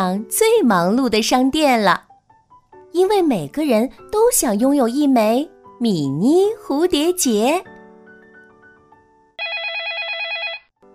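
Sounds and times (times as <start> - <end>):
speech: 0.0 - 2.1, 2.9 - 7.7
telephone ringing in a warbling electronic burst: 9.4 - 10.7.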